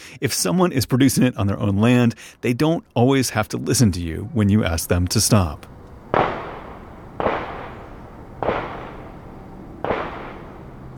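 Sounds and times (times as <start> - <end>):
speech: 0.2 - 5.8
gunshots from a shooting range beyond a neighborhood fence line: 5.6 - 10.9.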